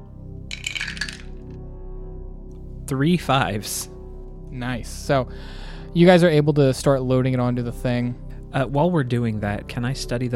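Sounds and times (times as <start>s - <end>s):
three dice tumbling and rattling across a hard table: 0.5s - 1.4s
speech: 2.9s - 3.9s, 4.5s - 10.3s.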